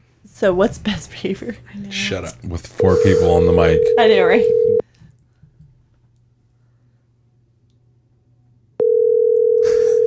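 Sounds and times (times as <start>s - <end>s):
speech: 0.4s - 4.8s
outgoing phone call electronic ringing tone: 2.8s - 4.8s, 8.8s - 10.0s.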